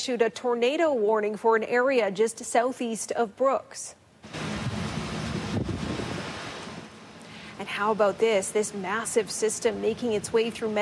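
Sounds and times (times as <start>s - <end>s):
speech: 0.0s - 4.5s, 7.7s - 10.8s
strong storm wind roaring across the microphone: 4.3s - 6.9s.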